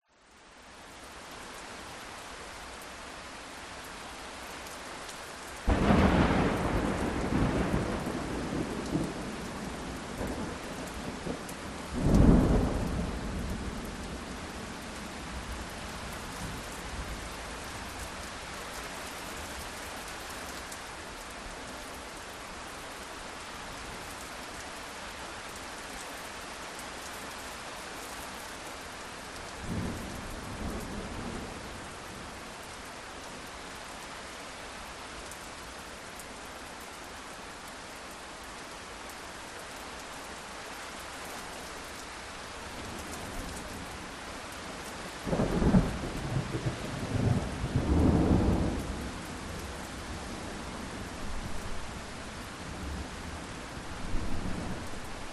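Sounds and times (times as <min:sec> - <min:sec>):
medium rain in a thunderstorm: 0:00.0 - 0:55.3
various direct lightning strikes: 0:05.7 - 0:08.8.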